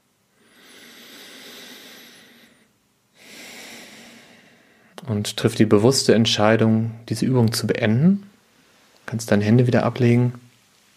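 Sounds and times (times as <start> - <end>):
deep breathing during a guided relaxation exercise: 0.3 - 5.0
speech: 5.0 - 8.3, 9.1 - 10.4.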